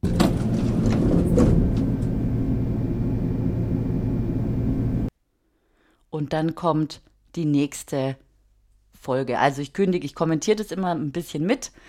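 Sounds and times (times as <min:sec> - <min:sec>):
elevator mechanical clanks: 0:00.0 - 0:02.3
elevator ride sound effect, low rumbling hum: 0:00.0 - 0:05.1
speech: 0:06.2 - 0:08.2, 0:09.0 - 0:11.8.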